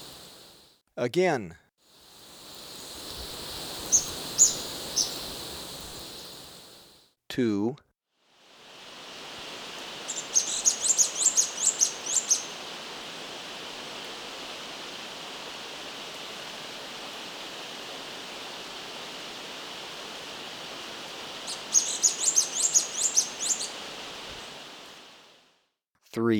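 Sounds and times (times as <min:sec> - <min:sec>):
steady hiss: 0:00.0 - 0:00.7, 0:01.9 - 0:07.1, 0:08.3 - 0:25.5
speech: 0:01.0 - 0:01.6, 0:07.4 - 0:07.8, 0:26.1 - 0:26.3
orange-crested flycatcher high chattering calls in Ecuador: 0:02.0 - 0:06.8, 0:10.1 - 0:12.8, 0:21.4 - 0:24.6.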